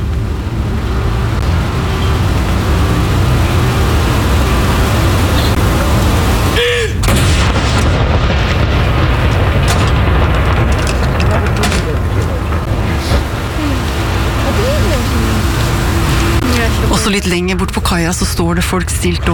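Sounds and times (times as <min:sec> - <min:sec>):
steady heavy wash of outdoor noise: 0:00.0 - 0:19.3
cannon salute fired from Akershus Fortress in Oslo booming: 0:06.6 - 0:14.8
speech: 0:17.2 - 0:19.3.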